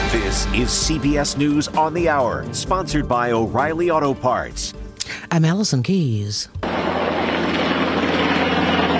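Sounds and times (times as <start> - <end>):
speech: 0.1 - 6.8
helicopter flying over a canyon during wildfires: 6.7 - 8.9.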